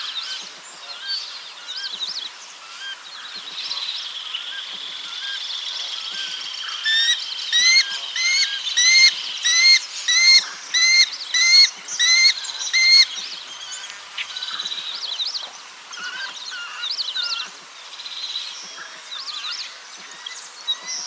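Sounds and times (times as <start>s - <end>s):
spot-winged falconet calling: 5.1s - 14.8s.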